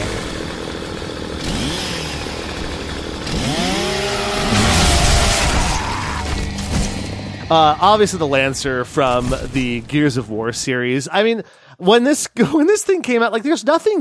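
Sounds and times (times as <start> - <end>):
chainsaw bayonet on a video game rifle revving: 0.0 - 7.2
speech: 7.5 - 14.0.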